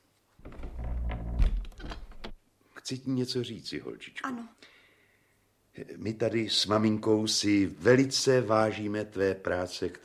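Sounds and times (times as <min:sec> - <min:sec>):
door being closed with a dull thud: 0:00.4 - 0:02.4
speech: 0:02.9 - 0:04.7, 0:05.8 - 0:10.0.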